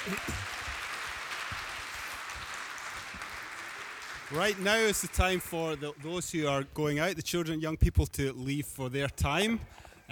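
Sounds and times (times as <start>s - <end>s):
speech: 0.0s - 0.6s, 4.3s - 10.1s
large indoor crowd applauding: 0.0s - 6.7s.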